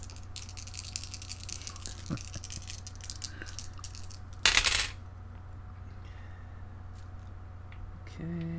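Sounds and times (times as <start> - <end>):
four dice rattling and clacking down onto a table: 0.0 - 5.0
quiet room hum: 0.0 - 8.5.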